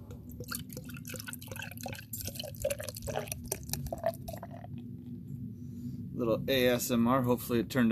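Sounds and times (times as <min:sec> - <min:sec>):
small drips of beer: 0:00.3 - 0:04.8
speech: 0:00.4 - 0:00.6, 0:06.2 - 0:07.9
light beer poured sloppily into a glass: 0:00.4 - 0:04.7.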